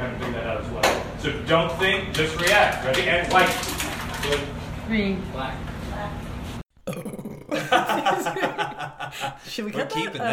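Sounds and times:
speech: 0:00.2 - 0:06.2, 0:08.0 - 0:10.3
loud guttural burp: 0:06.7 - 0:08.1
laughter: 0:07.4 - 0:10.3.

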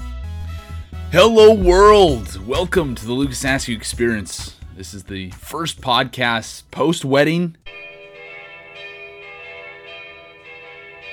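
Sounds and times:
speech: 0:01.1 - 0:07.8
wedding bells pealing: 0:07.7 - 0:11.1.

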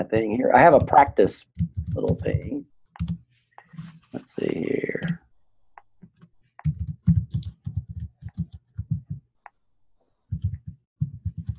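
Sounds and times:
speech: 0:00.0 - 0:03.2, 0:04.2 - 0:05.2
rapid uneven typing on a computer keyboard while searching for books: 0:00.7 - 0:03.2, 0:06.6 - 0:09.2, 0:10.3 - 0:11.5.

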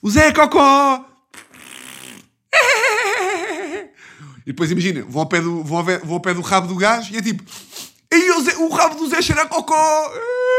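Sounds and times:
speech: 0:00.0 - 0:01.1, 0:04.5 - 0:10.4
person blowing raspberry fart imitations for a young child: 0:01.3 - 0:02.5.

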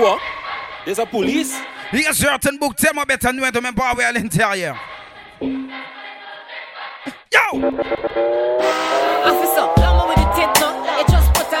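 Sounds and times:
speech: 0:00.0 - 0:05.6, 0:07.0 - 0:09.4
car engine droning as the car comes up the road: 0:07.6 - 0:11.5.

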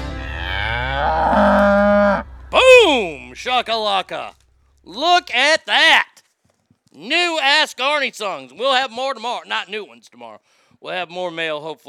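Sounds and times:
cow mooing: 0:00.2 - 0:02.4
speech: 0:03.4 - 0:06.1, 0:07.0 - 0:11.8.

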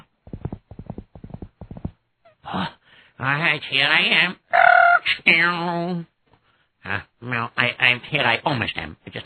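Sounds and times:
horse hooves clopping: 0:00.3 - 0:01.9
speech: 0:03.2 - 0:04.4, 0:05.0 - 0:06.1, 0:06.8 - 0:09.2.

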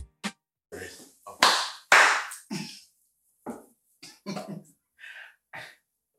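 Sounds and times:
single person clapping: 0:01.3 - 0:02.7
vocal sounds: 0:02.4 - 0:02.8.

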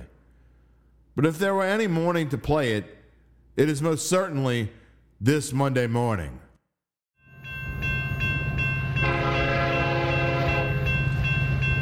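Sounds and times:
speech: 0:01.2 - 0:03.0, 0:03.6 - 0:06.5
train rolling along the rails: 0:07.4 - 0:11.8
loud sustained train horn blast: 0:09.0 - 0:11.0.

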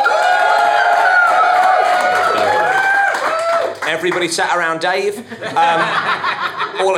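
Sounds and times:
studio audience cheering and whooping: 0:00.0 - 0:03.8
speech: 0:04.0 - 0:06.9
laughter: 0:05.1 - 0:06.9.

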